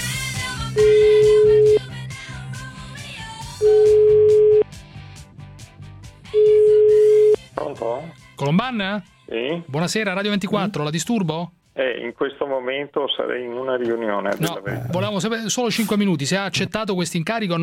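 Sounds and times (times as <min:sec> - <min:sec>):
ringing tone of an outgoing telephone call: 0:00.8 - 0:01.8, 0:03.6 - 0:04.7, 0:06.3 - 0:07.4
speech: 0:08.4 - 0:17.6.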